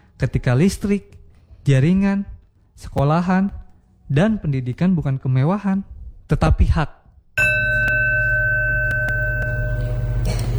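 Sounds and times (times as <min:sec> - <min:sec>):
speech: 0:00.2 - 0:07.0
electric school bell ringing for class start: 0:07.4 - 0:10.5
low hum: 0:07.4 - 0:10.5.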